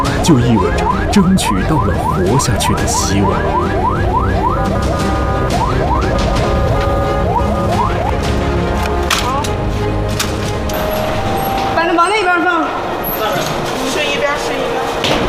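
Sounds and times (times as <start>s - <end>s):
ambulance siren wailing: 0.0s - 8.7s, 10.6s - 13.8s
road noise rumble: 0.0s - 15.0s
speech: 0.2s - 5.0s.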